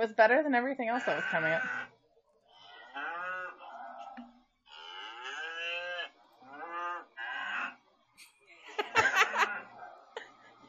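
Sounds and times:
speech: 0.0s - 1.9s
cows mooing: 0.9s - 1.9s, 2.6s - 7.8s
laughter: 8.5s - 10.6s.

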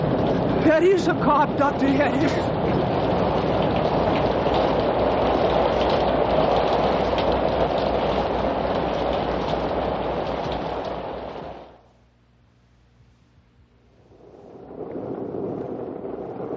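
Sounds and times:
steady heavy rain pouring in a dense hiss: 0.0s - 11.8s, 14.1s - 16.5s
speech: 0.6s - 2.6s.

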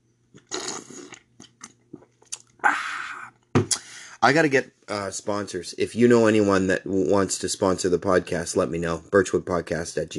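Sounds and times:
slurping coffee from a plastic cup: 0.4s - 1.3s
speech: 4.2s - 10.1s.

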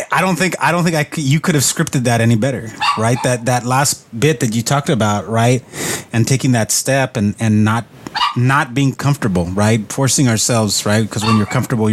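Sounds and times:
speech: 0.1s - 11.9s
dog barking and yipping: 2.8s - 3.4s, 8.2s - 8.4s, 11.2s - 11.6s.

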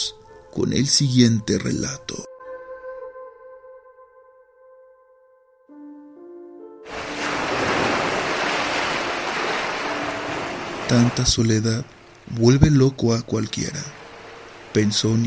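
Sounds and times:
speech: 0.6s - 2.3s, 10.9s - 14.0s, 14.8s - 15.2s
ocean waves crashing against sharp rocks: 6.9s - 15.2s.

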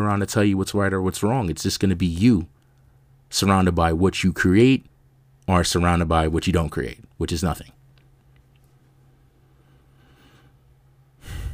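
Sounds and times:
speech: 0.0s - 2.6s, 3.3s - 4.9s, 5.5s - 7.8s
deep breath: 9.3s - 11.5s.

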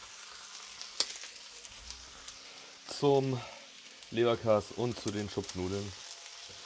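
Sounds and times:
green beans sizzling in a large hot pan with onions: 0.0s - 6.6s
speech: 3.0s - 3.5s, 4.1s - 6.0s.

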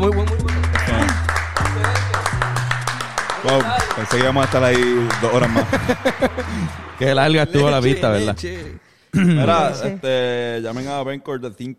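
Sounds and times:
speech: 0.0s - 0.4s, 3.5s - 11.7s
applause with sharp claps: 0.0s - 8.2s
laughter: 3.1s - 8.4s.

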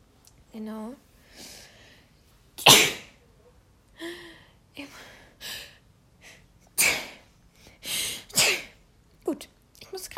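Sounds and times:
speech: 0.6s - 1.5s
person sneezing: 2.6s - 3.2s, 6.8s - 7.2s, 8.1s - 8.8s.

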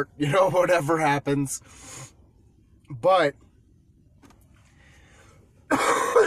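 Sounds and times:
speech: 0.0s - 2.2s, 2.9s - 3.4s, 5.7s - 6.0s
harsh cough from a sick person: 5.7s - 6.2s.

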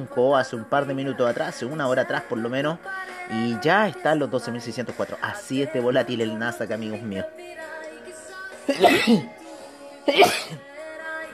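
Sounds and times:
speech: 0.0s - 7.7s, 8.7s - 9.4s, 10.0s - 10.7s
sneeze: 8.7s - 9.3s.

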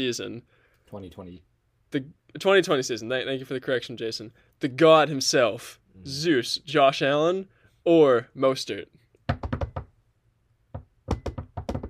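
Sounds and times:
speech: 0.0s - 9.0s
sharp knocks on a hard surface to buzz in during a football trivia quiz: 9.3s - 9.9s, 10.7s - 11.8s.

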